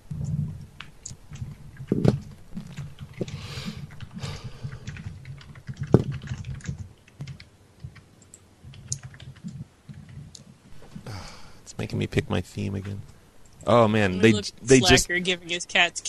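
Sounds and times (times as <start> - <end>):
rapid typing on a computer keyboard: 0.8 - 10.4
speech: 11.9 - 16.0.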